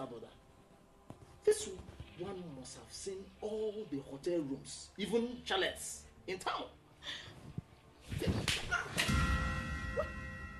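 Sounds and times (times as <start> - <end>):
speech: 0.0 - 0.4, 1.4 - 7.4
slap across the face: 8.1 - 9.3.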